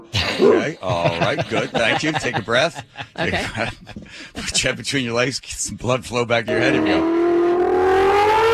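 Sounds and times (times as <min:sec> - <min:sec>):
laughter: 0:00.1 - 0:04.9
speech: 0:01.3 - 0:03.7, 0:04.6 - 0:07.3
human voice imitating a Porsche Formula One-derived V10 racing engine revving: 0:06.5 - 0:08.5.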